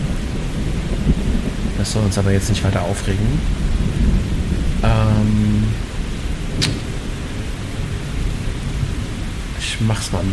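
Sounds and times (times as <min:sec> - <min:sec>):
deep rumble of thunder: 0:00.0 - 0:10.3
steady rain hissing: 0:00.0 - 0:10.3
speech: 0:01.8 - 0:05.8, 0:09.8 - 0:10.3
sharp crack: 0:06.5 - 0:07.5.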